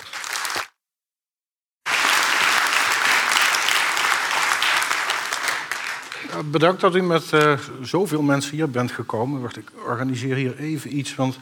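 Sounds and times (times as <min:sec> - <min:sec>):
audience applause for a speaker: 0:00.0 - 0:00.7, 0:01.9 - 0:06.6
speech: 0:06.4 - 0:11.4.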